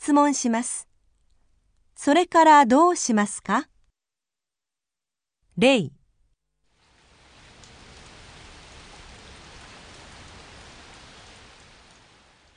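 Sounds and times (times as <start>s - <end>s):
speech: 0.0s - 0.9s, 2.0s - 3.7s, 5.6s - 6.0s
steady rain falling: 6.6s - 12.5s.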